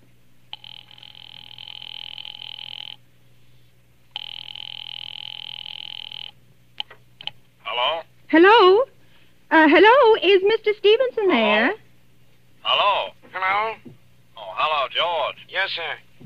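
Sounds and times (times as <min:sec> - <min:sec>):
telephone ringing over the line when calling an office: 0:00.5 - 0:03.0, 0:04.1 - 0:06.4
speech: 0:08.3 - 0:08.9, 0:09.5 - 0:11.8, 0:14.7 - 0:16.1.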